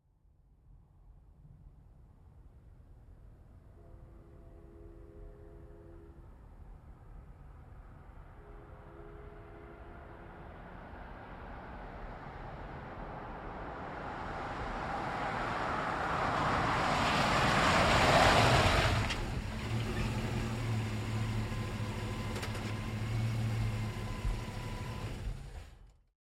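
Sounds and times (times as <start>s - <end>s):
GMC Savana truck: 9.1s - 26.0s.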